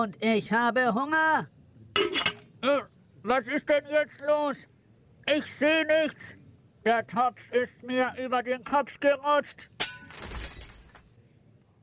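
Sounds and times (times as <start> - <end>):
speech: 0.0 - 4.7, 5.3 - 10.4
plates and glasses shattering: 9.8 - 11.1.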